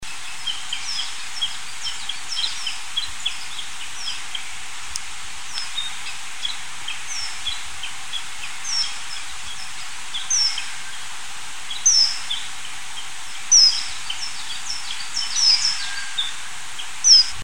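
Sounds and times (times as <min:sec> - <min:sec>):
bush warbler: 0:00.0 - 0:17.4.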